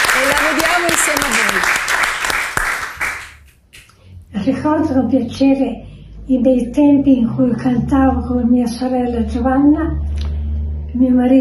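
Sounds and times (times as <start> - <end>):
audience applause: 0.0 - 3.5
speech: 4.5 - 10.1, 10.9 - 11.3.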